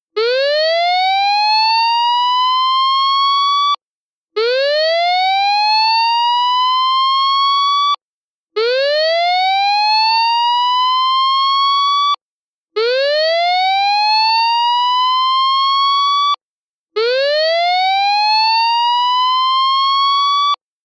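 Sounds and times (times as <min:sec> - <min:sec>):
siren test: 0:00.2 - 0:03.8, 0:04.4 - 0:08.0, 0:08.6 - 0:12.2, 0:12.8 - 0:16.4, 0:17.0 - 0:20.6.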